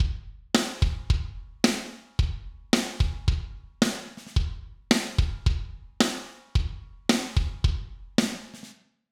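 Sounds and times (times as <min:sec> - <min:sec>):
kick drum: 0:00.0 - 0:01.6, 0:02.2 - 0:03.8, 0:04.4 - 0:05.9, 0:06.6 - 0:08.2
snare drum: 0:00.0 - 0:02.2, 0:02.8 - 0:08.8.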